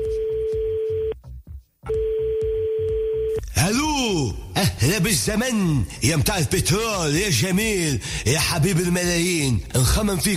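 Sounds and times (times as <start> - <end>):
electronic telephone tone for a call to Qatar: 0.0 - 1.2, 1.9 - 3.4
speech: 3.6 - 10.3.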